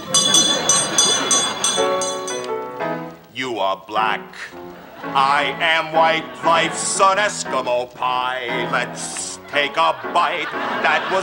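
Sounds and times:
laughter: 0.0s - 2.1s, 4.3s - 11.2s
small hand bell ringing: 0.0s - 2.6s
speech: 3.6s - 11.2s.

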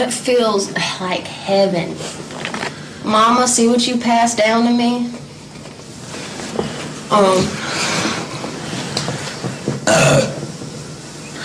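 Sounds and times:
speech: 0.0s - 5.3s, 7.1s - 7.9s
loud drawn-out croaking burps: 9.8s - 10.4s.

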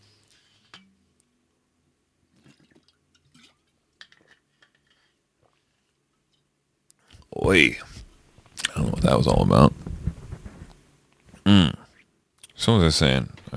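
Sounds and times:
person drinking a glass of water: 2.4s - 5.6s
small wet clicks and sips: 2.4s - 5.9s
speech: 7.5s - 8.0s, 9.1s - 9.7s, 12.7s - 13.5s.

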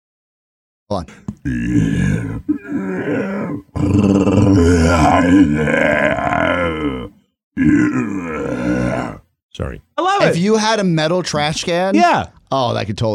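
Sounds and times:
speech: 0.9s - 13.1s
person imitating an animal roar for a movie: 1.4s - 9.3s.

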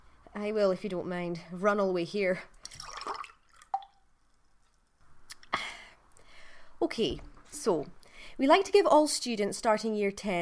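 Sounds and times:
speech: 0.4s - 2.6s, 6.9s - 10.4s
water being poured into a glass: 2.7s - 4.0s.

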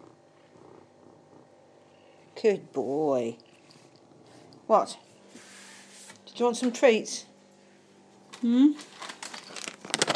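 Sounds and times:
male cat purring: 0.0s - 5.2s
speech: 2.4s - 3.4s, 4.7s - 5.0s, 6.4s - 7.3s, 8.4s - 9.0s.

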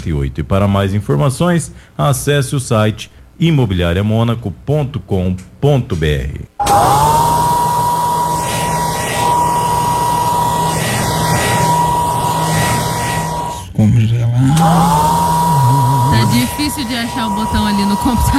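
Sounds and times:
speech: 0.0s - 7.2s, 13.8s - 15.0s, 16.4s - 18.3s
hair dryer blowing with a whooshing roar and motor hum: 6.6s - 13.6s, 14.4s - 18.3s.

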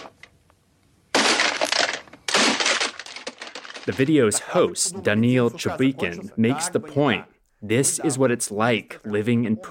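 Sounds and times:
alarm clock being smashed and breaking apart: 1.2s - 4.0s
speech: 3.9s - 9.6s.

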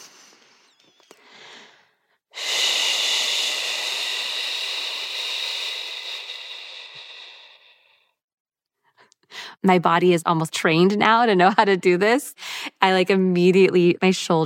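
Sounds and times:
soft inhale: 0.0s - 8.2s
speech: 9.6s - 14.4s.

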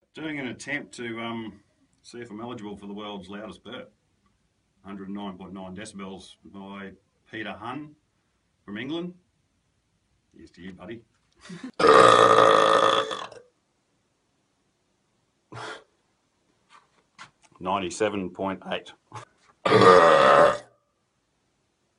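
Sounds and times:
man burping extremely loudly in the Northern Territory: 11.7s - 13.5s, 19.6s - 20.7s.

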